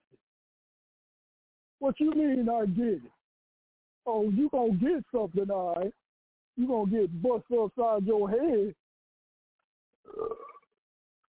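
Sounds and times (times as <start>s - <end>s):
speech: 1.8s - 3.2s, 4.0s - 6.0s, 6.6s - 8.8s, 10.0s - 10.5s
loud throaty burp: 10.1s - 10.8s.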